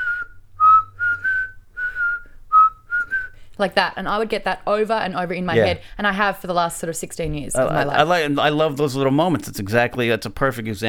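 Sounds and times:
person whistling a short bouncy tune imitating a film background tune: 0:00.0 - 0:03.4
speech: 0:03.6 - 0:10.8.

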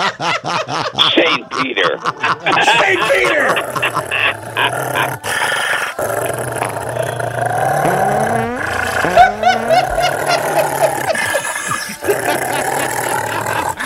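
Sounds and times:
laughter: 0:00.0 - 0:06.5, 0:07.8 - 0:13.8
dog growling and snarling: 0:03.5 - 0:08.5, 0:09.9 - 0:13.8.

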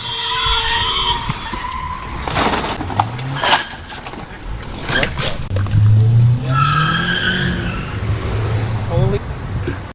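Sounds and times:
car tires screeching in a skid: 0:00.0 - 0:09.3
car engine roar: 0:04.9 - 0:09.2.

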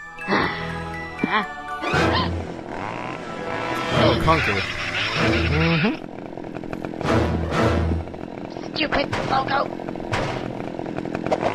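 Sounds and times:
speech: 0:01.3 - 0:02.4, 0:04.0 - 0:06.2, 0:08.8 - 0:10.2
chainsaw revving while sawing a logo in half: 0:01.9 - 0:11.5
sharp crackling impacts: 0:05.5 - 0:11.5.

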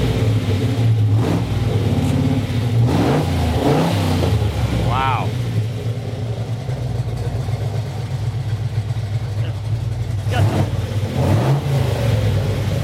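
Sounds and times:
1974 Pantera GTS engine with factory headers idling: 0:00.0 - 0:12.8.

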